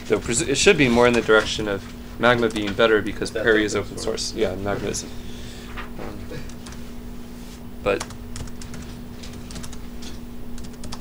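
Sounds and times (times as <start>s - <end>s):
faint steady hum: 0.0s - 10.9s
speech: 0.1s - 5.3s, 7.8s - 8.2s
typing on a computer keyboard: 7.9s - 9.8s, 10.6s - 10.9s.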